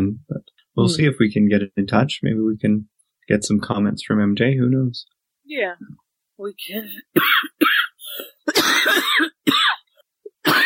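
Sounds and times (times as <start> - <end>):
speech: 0.1 - 7.9
person coughing in short bursts: 7.1 - 10.6
person clearing throat with a rough raspy sound: 7.2 - 10.6.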